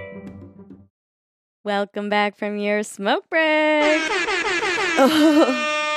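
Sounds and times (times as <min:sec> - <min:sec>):
speech: 0:01.7 - 0:04.4, 0:05.0 - 0:05.7
loud brassy air horn blaring: 0:03.8 - 0:05.9.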